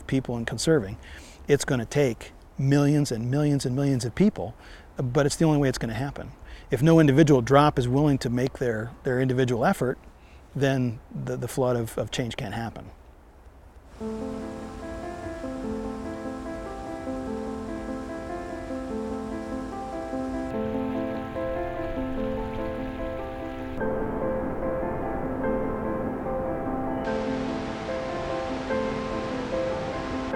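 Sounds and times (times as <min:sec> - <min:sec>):
speech: 0:00.1 - 0:13.0, 0:14.0 - 0:14.6
continuous rushing water: 0:13.9 - 0:30.3.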